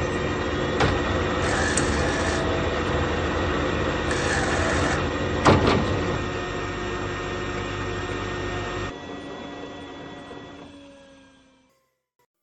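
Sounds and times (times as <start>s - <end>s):
noisy printer whirring and grinding: 0.0s - 11.6s
sharp mechanical clunks of a printer: 0.6s - 2.5s, 4.0s - 6.3s.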